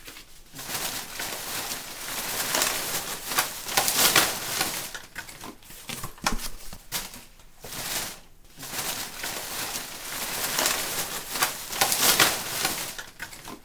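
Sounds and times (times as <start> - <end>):
rummaging through garbage: 0.0 - 13.6.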